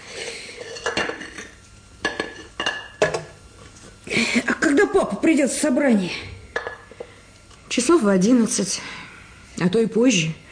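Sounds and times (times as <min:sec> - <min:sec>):
plates clinking against each other while being washed and dried: 0:00.6 - 0:03.4, 0:06.5 - 0:07.1
speech: 0:04.4 - 0:06.3, 0:07.8 - 0:09.0, 0:09.6 - 0:10.4.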